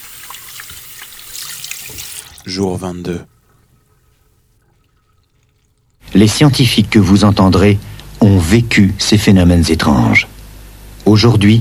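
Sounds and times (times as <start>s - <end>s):
tap water running into a sink while hands are washed: 0.0s - 6.8s
speech: 2.5s - 3.3s, 6.2s - 10.3s, 11.0s - 11.5s.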